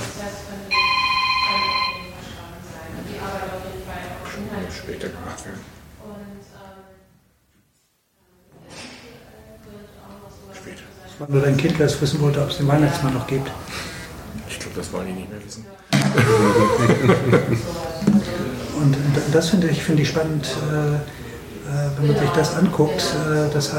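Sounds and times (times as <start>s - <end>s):
telephone ringing with a bright electronic trill: 0.7s - 2.3s
speech: 4.9s - 6.6s, 11.2s - 13.9s, 14.8s - 18.0s, 18.8s - 23.7s
laughter: 16.0s - 18.6s.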